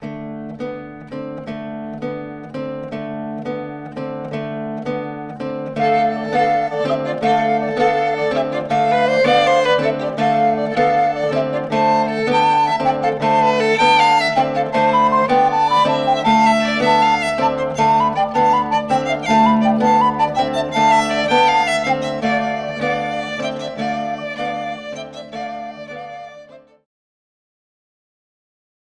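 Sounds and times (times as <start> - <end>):
miniature zither: 0.4 - 26.5.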